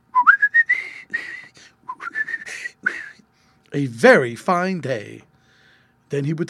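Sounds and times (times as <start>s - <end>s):
person whistling a bird-like song phrase: 0.1s - 3.2s
speech: 3.7s - 5.3s, 6.1s - 6.4s.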